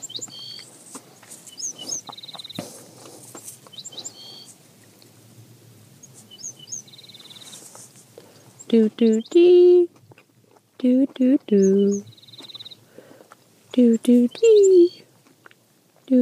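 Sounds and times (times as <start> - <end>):
birds chirping and singing: 0.0 - 0.7, 1.4 - 4.6, 6.0 - 9.9, 11.1 - 13.2, 13.8 - 15.1
steady soft outdoor hiss: 0.0 - 16.2
speech: 8.7 - 9.9, 10.8 - 12.1, 13.8 - 15.0.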